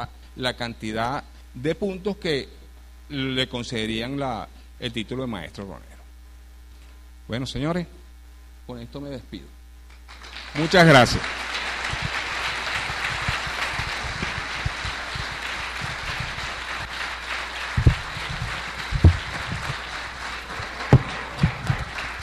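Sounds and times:
speech: 0.0 - 5.9, 7.3 - 8.0, 8.7 - 11.4
audience applause at an international congress on distilled spirits: 10.1 - 22.2.

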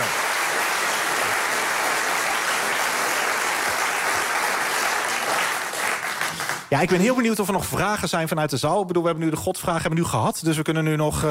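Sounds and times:
audience applause in a hall after a talk: 0.0 - 7.2
speech: 6.7 - 11.2.

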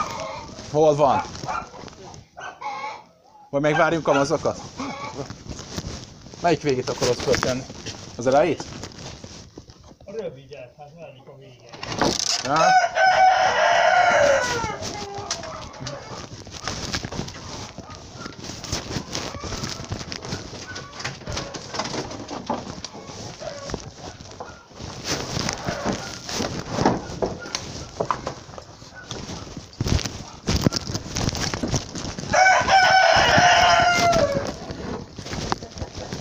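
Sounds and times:
hens clucking: 0.0 - 5.6, 13.3 - 36.2
speech: 0.7 - 1.5, 3.5 - 5.4, 6.4 - 8.8, 10.8 - 13.0
rooster crowing: 12.5 - 14.8, 32.3 - 34.6.

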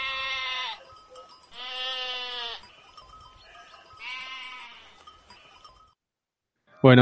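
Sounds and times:
goat bleating: 0.0 - 0.9, 1.5 - 2.7, 4.0 - 5.5.

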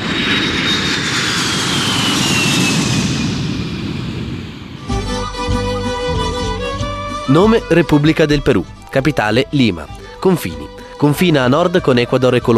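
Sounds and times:
airplane taking off: 0.0 - 12.5
music: 4.8 - 12.5
speech: 7.3 - 12.5.

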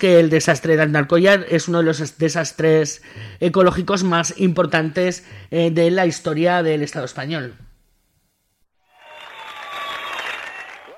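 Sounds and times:
speech: 0.0 - 7.7
crowd applauding: 8.9 - 10.9.

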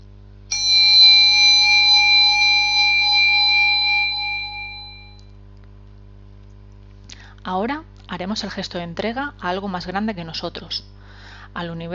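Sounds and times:
small meditation bell struck during a guided breathing and meditation exercise: 0.5 - 5.3
speech: 7.5 - 11.0, 11.6 - 11.9.

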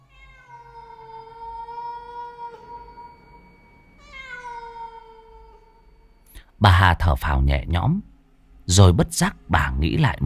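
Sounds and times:
pet cat meowing: 0.0 - 3.4, 4.0 - 6.0
faint low hum: 0.0 - 10.2
speech: 6.6 - 8.1, 8.7 - 10.2.

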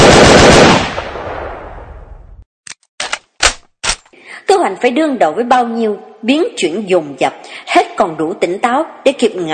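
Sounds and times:
submachine gun burst fired from the bow of a small boat on a river: 0.0 - 1.0
speech: 4.6 - 9.5.

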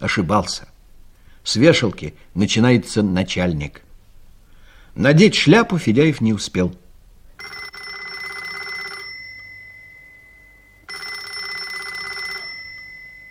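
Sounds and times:
speech: 0.0 - 0.7, 1.4 - 3.8, 5.0 - 6.8
office telephone ringing with electric bell tone: 7.4 - 13.3.

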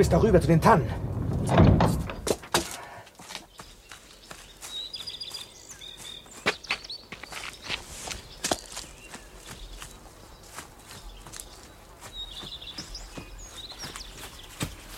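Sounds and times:
speech: 0.0 - 2.0
heavy door being slid open: 0.9 - 2.3
thuds: 1.1 - 2.8
footsteps: 1.1 - 14.9.

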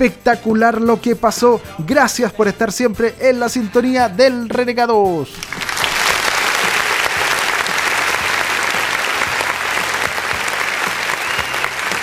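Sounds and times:
speech: 0.0 - 5.6
loud applause: 5.4 - 12.0.

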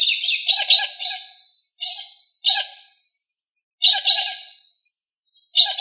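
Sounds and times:
Australorp chicken squawking: 0.1 - 2.8, 3.8 - 4.6, 5.6 - 5.8.

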